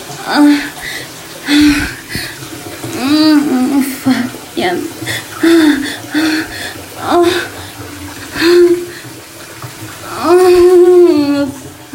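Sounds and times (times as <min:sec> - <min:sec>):
running water pouring: 0:00.0 - 0:11.9
speech: 0:00.2 - 0:00.7.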